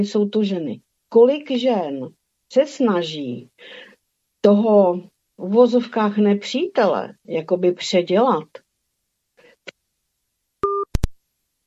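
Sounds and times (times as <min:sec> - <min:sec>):
speech: 0:00.0 - 0:08.6
telephone busy or disconnect tone as a phone call drops: 0:10.6 - 0:10.9.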